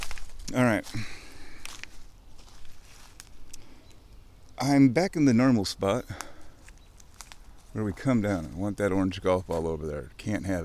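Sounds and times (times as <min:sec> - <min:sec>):
crunchy footsteps on a rough brittle surface outdoors: 0:00.0 - 0:03.8, 0:06.1 - 0:10.4
speech: 0:00.5 - 0:01.2, 0:04.6 - 0:06.3, 0:07.7 - 0:10.6.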